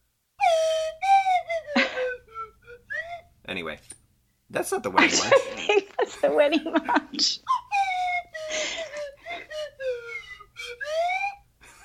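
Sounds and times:
slide whistle tune: 0.4s - 3.4s, 7.5s - 11.8s
speech: 3.7s - 7.6s
laughter: 5.0s - 7.5s.

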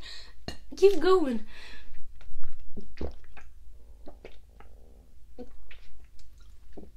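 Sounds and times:
speech: 0.8s - 1.5s
stomach gurgling and squelching: 1.9s - 6.9s.

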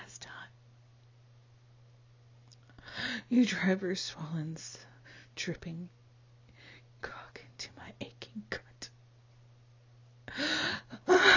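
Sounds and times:
speech: 3.3s - 6.0s
woman gasping: 10.3s - 11.3s.

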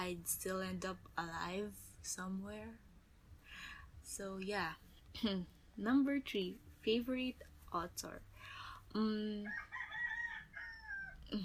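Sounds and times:
speech: 0.0s - 2.8s, 3.5s - 9.7s, 11.3s - 11.4s
rooster crowing: 9.5s - 11.3s.

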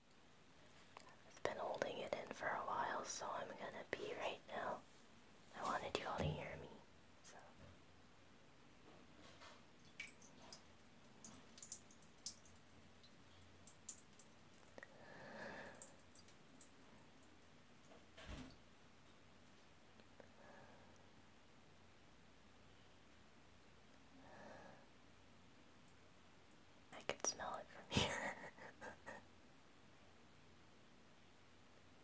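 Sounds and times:
whispers: 1.0s - 4.8s, 5.5s - 7.6s, 27.0s - 29.2s.

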